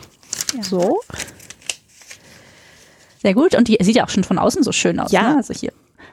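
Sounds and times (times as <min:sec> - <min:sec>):
crisp wrapping paper rustling and crinkling as a gift box is unpacked: 0:00.0 - 0:03.7
speech: 0:00.6 - 0:01.2, 0:03.2 - 0:05.9.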